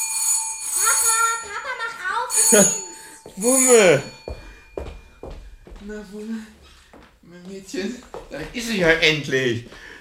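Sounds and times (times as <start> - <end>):
bell ringing with a bright sustained metallic tone: 0.0 - 5.8
speech: 2.4 - 4.2, 5.8 - 6.6, 7.3 - 9.9.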